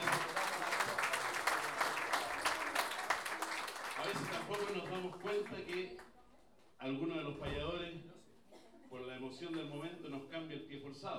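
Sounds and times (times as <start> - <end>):
audience applause at a payador improvisation contest: 0.0 - 5.8
speech: 5.0 - 6.1, 6.8 - 8.1, 9.2 - 11.1.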